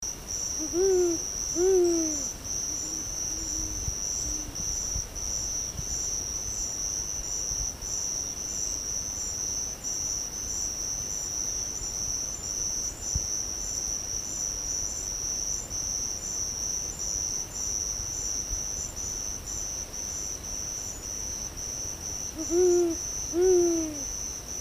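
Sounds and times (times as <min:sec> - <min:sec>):
jacurutu owl call: 0:00.6 - 0:04.6, 0:22.4 - 0:24.1.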